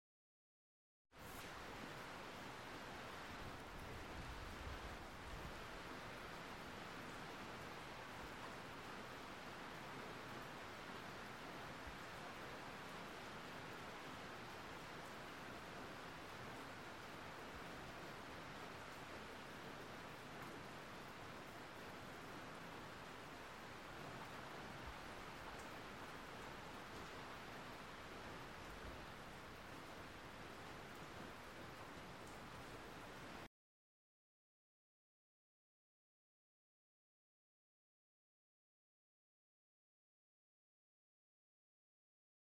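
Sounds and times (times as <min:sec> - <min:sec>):
moderate rain heard indoors: 0:01.2 - 0:33.5.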